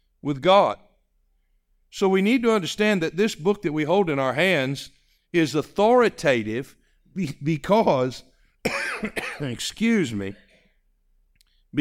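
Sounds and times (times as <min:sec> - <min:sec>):
speech: 0:00.2 - 0:00.8, 0:01.9 - 0:10.4
person with a lingering cough coughing: 0:08.6 - 0:09.6, 0:10.3 - 0:10.8
throat clearing: 0:08.7 - 0:09.5, 0:10.3 - 0:10.8.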